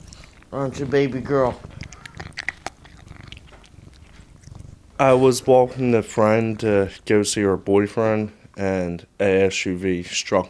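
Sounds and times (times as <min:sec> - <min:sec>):
kitten soft clicking chewing-like mouth noises: 0:00.0 - 0:00.6, 0:01.4 - 0:05.1
speech: 0:00.5 - 0:01.8, 0:05.0 - 0:10.4
female kitten making squeaky chirps: 0:01.6 - 0:04.7.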